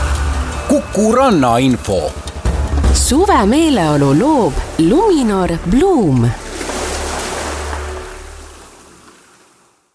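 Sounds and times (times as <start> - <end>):
speech: 0.9 - 2.3, 2.9 - 6.4
sea surf washing ashore: 4.0 - 9.9.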